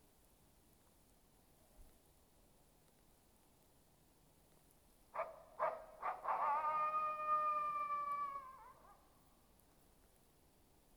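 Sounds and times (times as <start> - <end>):
animal yelps and long tonal howl: 5.2 - 9.1.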